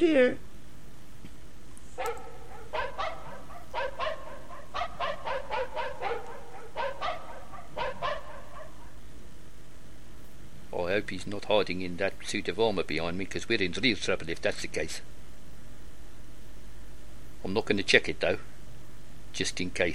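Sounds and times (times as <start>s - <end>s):
speech: 0.0s - 0.5s, 10.8s - 15.2s, 17.4s - 18.5s, 19.3s - 19.9s
puppy barking with whimpering edge: 2.0s - 9.0s.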